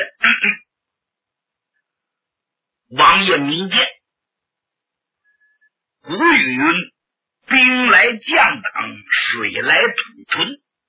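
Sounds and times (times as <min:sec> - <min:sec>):
person clearing throat: 0:00.0 - 0:00.6
speech: 0:03.0 - 0:03.9, 0:06.1 - 0:06.9, 0:07.5 - 0:10.6.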